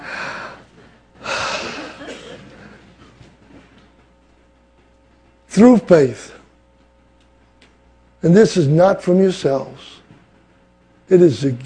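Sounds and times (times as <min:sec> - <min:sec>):
airy hissing breaths: 0:00.0 - 0:01.7
speech: 0:05.6 - 0:06.4, 0:08.2 - 0:10.0, 0:11.1 - 0:11.6.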